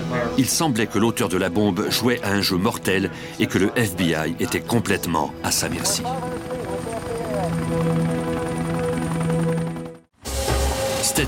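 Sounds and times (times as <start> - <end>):
speech: 0.4 - 6.6
FBI helicopter rotor drone searching a highway at night in Nevada: 1.9 - 11.1
person narrating: 3.1 - 7.6.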